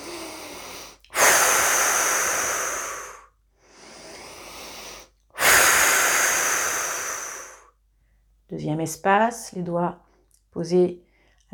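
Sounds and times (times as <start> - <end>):
slow deep breaths during a relaxation exercise: 0.0 - 8.4
speech: 8.6 - 10.0, 10.6 - 11.5.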